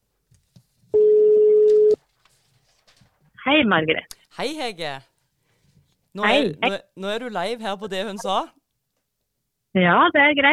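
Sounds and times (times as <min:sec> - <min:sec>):
telephone ringback tone on a phone line: 0:01.0 - 0:02.0
speech: 0:03.4 - 0:05.1, 0:06.1 - 0:08.6, 0:09.8 - 0:10.5.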